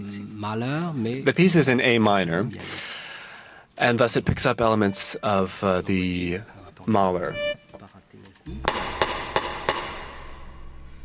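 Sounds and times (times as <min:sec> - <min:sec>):
speech: 0:00.1 - 0:02.9, 0:03.8 - 0:07.6
hammer blows: 0:08.5 - 0:11.0.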